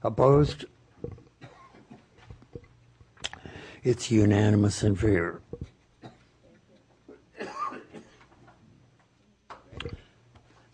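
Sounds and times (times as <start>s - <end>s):
speech: 0.0s - 0.7s, 3.8s - 5.7s
room noise: 0.0s - 10.7s
harsh coughs from a persistent cough during a meeting: 1.4s - 2.1s, 6.0s - 6.3s, 7.1s - 8.2s.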